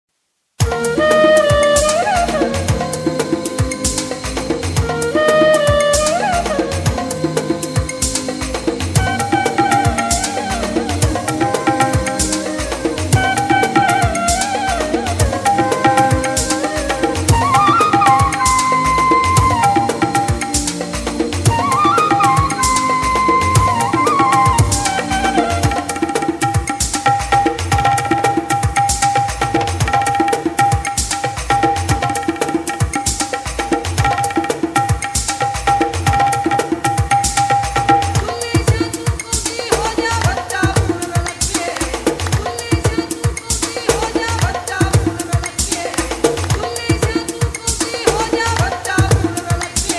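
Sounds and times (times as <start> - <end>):
ambient music with nature: 0.6 - 27.3
tabla for dance: 0.6 - 49.9.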